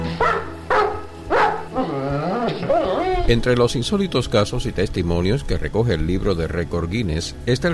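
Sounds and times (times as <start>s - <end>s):
large dog barking: 0.1s - 3.2s
speech: 3.3s - 7.7s.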